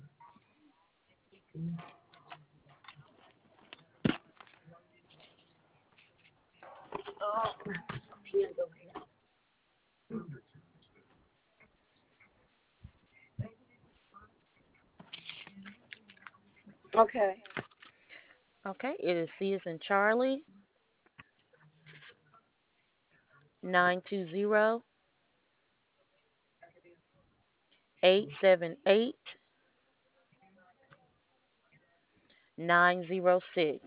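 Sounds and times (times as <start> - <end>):
speech: 1.6 - 2.0, 17.1 - 17.5, 18.6 - 20.5, 23.7 - 24.9, 28.0 - 29.4, 32.7 - 33.8
rustling and shuffling while rummaging for a pen: 1.8 - 9.2, 10.8 - 18.4.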